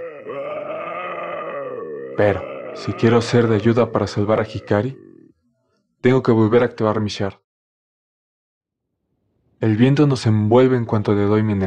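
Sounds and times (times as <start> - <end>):
deep raspy guttural creature voices growling and groaning: 0.0 - 5.3
speech: 2.2 - 5.0, 6.0 - 7.4, 9.6 - 11.6.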